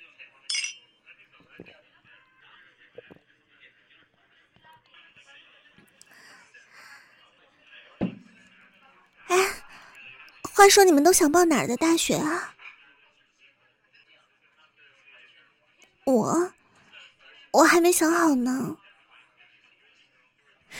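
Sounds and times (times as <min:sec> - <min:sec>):
glasses clinking in a toast: 0:00.5 - 0:00.8
small table noises: 0:00.5 - 0:00.8, 0:08.0 - 0:08.4
speech: 0:01.6 - 0:01.8, 0:10.6 - 0:12.6, 0:17.8 - 0:18.8.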